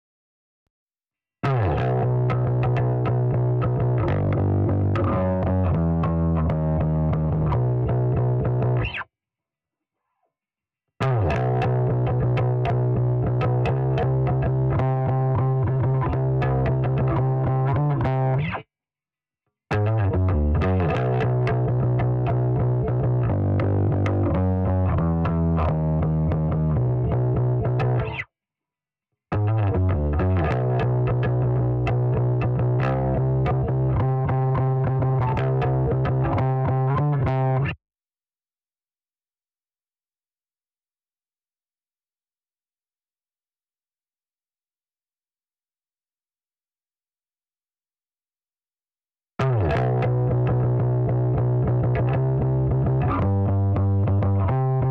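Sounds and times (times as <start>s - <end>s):
punk bass: 1.4s - 8.9s, 11.0s - 18.5s, 19.7s - 28.2s, 29.3s - 37.8s, 49.4s - 54.8s.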